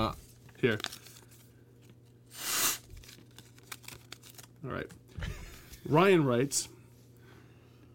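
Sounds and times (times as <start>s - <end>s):
speech: 0.1s - 1.0s, 4.6s - 6.8s
faint paper crinkling and rustling: 0.2s - 2.1s, 2.8s - 4.6s
paper torn to mimic opening an envelope: 2.3s - 4.5s.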